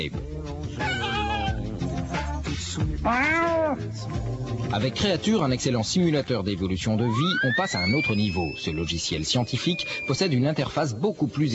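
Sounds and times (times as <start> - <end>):
speech: 0.0 - 0.3, 2.8 - 11.5
virtual cat in a computer game meowing unhappily after being sprayed: 0.8 - 1.6, 3.1 - 3.9.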